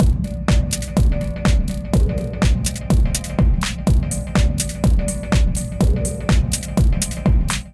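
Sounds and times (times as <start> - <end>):
drum kit beat at 124 bpm: 0.0 - 7.7.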